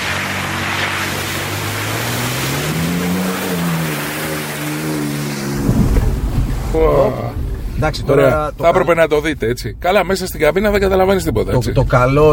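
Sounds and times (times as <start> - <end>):
constant wash of rushing noise: 0.0 - 8.6
car driving fast through water with a loud splash: 0.0 - 9.4
car engine revving: 0.0 - 12.3
speech: 6.8 - 7.2, 7.8 - 12.3.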